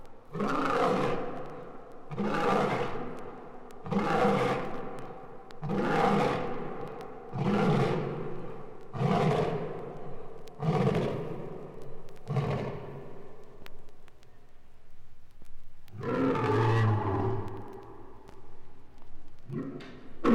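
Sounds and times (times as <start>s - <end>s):
lion giving deep grunting roars: 0.3s - 1.4s, 2.1s - 3.2s, 3.8s - 4.9s, 5.6s - 9.8s, 10.6s - 11.6s, 12.2s - 13.1s, 15.9s - 17.8s, 19.5s - 20.3s.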